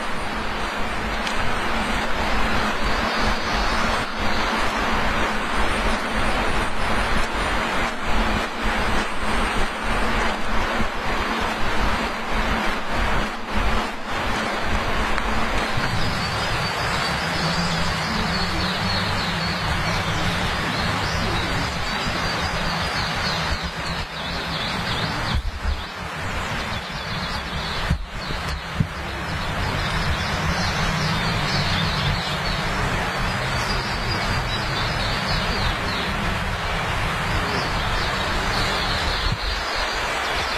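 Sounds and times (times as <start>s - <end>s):
flowing water rushing: 0.0s - 40.5s.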